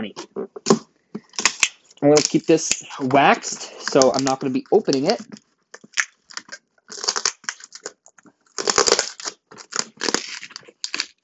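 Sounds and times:
speech: 0.0s - 0.4s, 2.0s - 5.4s
scissors cutting heavy packing tape on a package: 1.4s - 2.9s, 6.0s - 8.0s, 8.6s - 11.2s.

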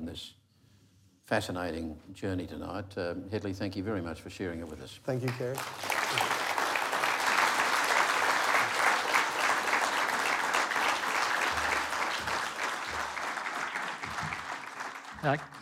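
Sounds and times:
speech: 0.2s - 0.4s, 1.3s - 6.4s, 15.2s - 15.6s
sizeable audience applauding: 5.2s - 15.6s.

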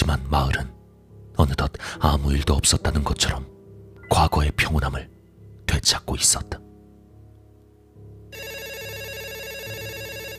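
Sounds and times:
speech: 1.4s - 3.5s, 4.1s - 5.1s, 5.8s - 6.6s
hotel telephone bell ringing: 8.3s - 10.3s.

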